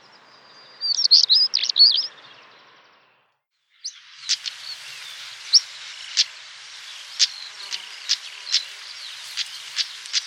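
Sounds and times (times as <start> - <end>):
European stonechat singing: 0.0 - 2.8, 3.7 - 10.2
rushing background hiss: 3.8 - 10.2.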